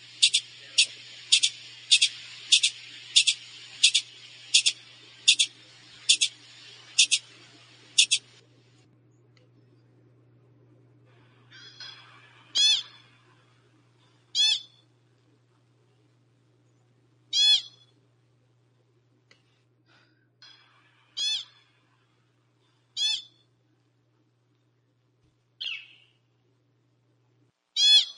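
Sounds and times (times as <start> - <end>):
pika high-pitched chirps and shrill squeaks: 0.0 - 8.4, 11.5 - 13.1, 14.4 - 14.8, 17.3 - 17.9, 23.0 - 23.4, 25.6 - 26.1, 27.8 - 28.1
faint low hum: 0.0 - 28.1.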